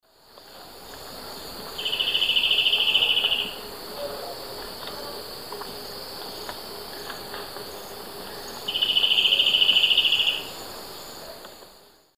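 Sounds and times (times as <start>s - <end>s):
Ramphocaenus melanurus singing in the Eastern Lowlands of South America: 1.2s - 5.2s, 6.2s - 10.6s.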